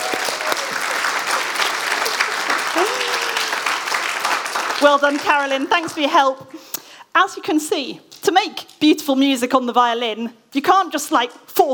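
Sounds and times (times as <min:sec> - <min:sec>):
faint tonal calls or cheers: 0:00.0 - 0:04.0
room full of people applauding: 0:00.0 - 0:05.8
speech: 0:04.8 - 0:11.7.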